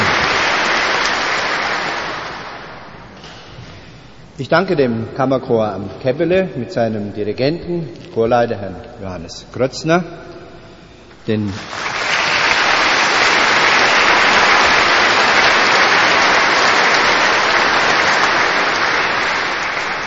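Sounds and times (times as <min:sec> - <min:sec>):
applause for a chamber choir, organist and instrumentalists after a church concert: 0:00.0 - 0:02.9, 0:11.6 - 0:20.0
speech: 0:04.4 - 0:10.4, 0:11.2 - 0:11.9.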